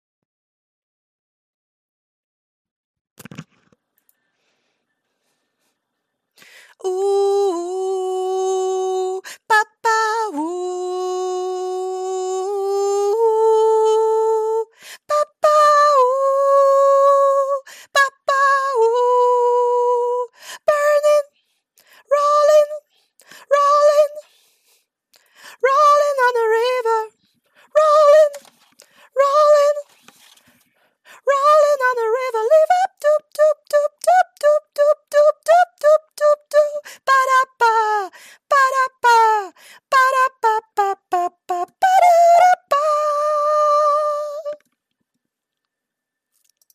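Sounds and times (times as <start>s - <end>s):
soprano singing: 6.7s - 24.3s, 25.5s - 30.0s, 31.1s - 44.7s.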